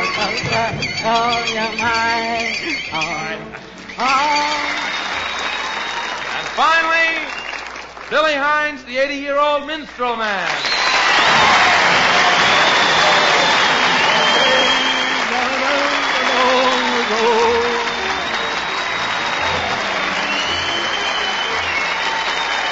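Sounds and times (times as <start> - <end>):
speech: 0.7 - 5.3, 6.6 - 7.4, 8.1 - 10.8, 16.4 - 17.9
sustained applause from a large audience: 3.7 - 8.4, 10.4 - 22.7
faint cheering: 3.8 - 7.7, 10.6 - 22.7.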